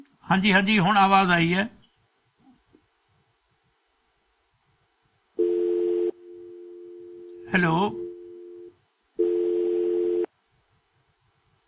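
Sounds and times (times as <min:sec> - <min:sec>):
speech: 0:00.3 - 0:01.8, 0:07.5 - 0:08.0
telephone line tone while connecting a caller: 0:05.4 - 0:10.3.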